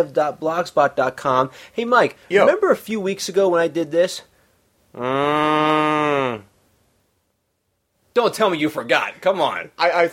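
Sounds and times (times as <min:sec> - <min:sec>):
speech: 0:00.0 - 0:04.3, 0:04.9 - 0:06.5, 0:08.2 - 0:10.1
person imitating a cow's moo: 0:05.0 - 0:06.5.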